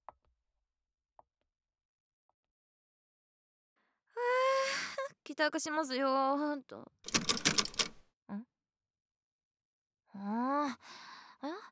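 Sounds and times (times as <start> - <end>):
speech: 5.3 - 7.2, 8.3 - 8.5, 10.2 - 11.7
key rattling and jiggling in a stuck door lock: 7.1 - 8.0.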